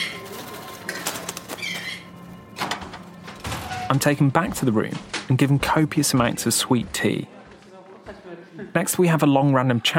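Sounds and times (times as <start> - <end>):
caged birds flapping wings: 0.0 - 2.0
speech: 3.9 - 7.4, 8.6 - 9.9.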